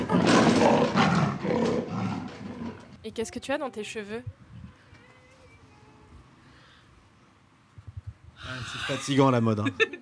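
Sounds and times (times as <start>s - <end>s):
big cat roaring: 0.0s - 3.0s
speech: 3.1s - 4.4s, 8.5s - 10.0s
laughter: 8.8s - 10.0s.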